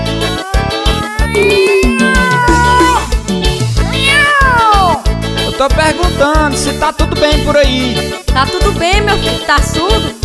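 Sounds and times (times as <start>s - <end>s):
cat meowing: 0.0s - 3.2s, 3.9s - 5.0s
speech: 5.7s - 10.2s.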